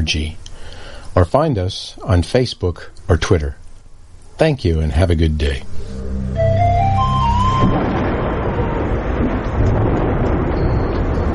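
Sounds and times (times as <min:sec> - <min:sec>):
speech: 0:00.0 - 0:00.4, 0:01.2 - 0:03.6, 0:04.4 - 0:06.0
low rumbling: 0:05.6 - 0:11.3
brief rising musical tone: 0:05.7 - 0:09.0
heavy rain: 0:06.6 - 0:11.3.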